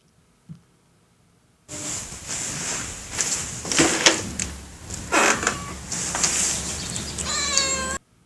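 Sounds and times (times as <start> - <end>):
steady rustling scraping background: 1.7 - 7.8
cat meowing loudly: 5.0 - 8.0.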